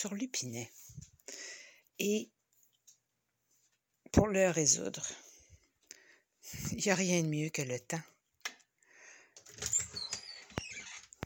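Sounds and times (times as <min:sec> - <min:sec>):
speech: 0:00.0 - 0:02.4, 0:04.1 - 0:05.2, 0:06.5 - 0:08.1
wardrobe door opening with a creak and rattle: 0:09.4 - 0:11.2.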